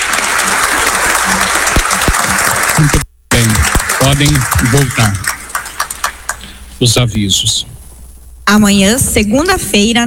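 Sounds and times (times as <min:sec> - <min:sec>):
church congregation applauding a married couple after a blessing: 0:00.0 - 0:06.5
speech: 0:02.8 - 0:03.1, 0:04.2 - 0:05.3, 0:06.8 - 0:07.7, 0:08.5 - 0:10.0.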